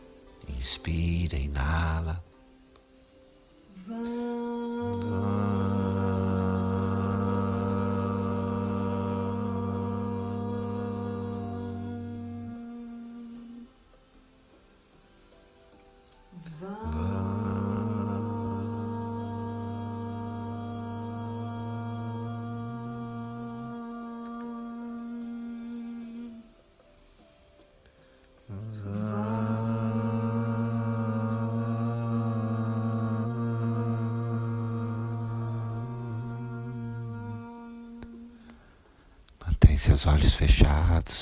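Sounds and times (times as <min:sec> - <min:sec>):
speech: 0:00.6 - 0:02.3, 0:03.9 - 0:04.4, 0:40.0 - 0:41.1
group of voices chanting a drawn-out mantra syllable in unison: 0:03.8 - 0:13.3, 0:16.4 - 0:26.0, 0:28.5 - 0:38.2.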